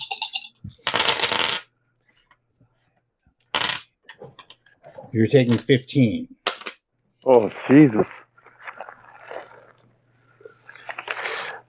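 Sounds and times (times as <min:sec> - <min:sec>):
many dice rolling on a hard tabletop: 0:00.7 - 0:01.7, 0:03.4 - 0:04.6, 0:06.4 - 0:06.8
speech: 0:05.1 - 0:06.3, 0:07.3 - 0:08.2.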